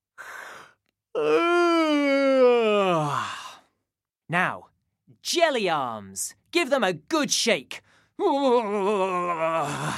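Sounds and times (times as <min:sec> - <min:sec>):
person yawning: 0:01.2 - 0:03.7, 0:08.2 - 0:09.9
speech: 0:04.3 - 0:04.6, 0:05.2 - 0:09.9.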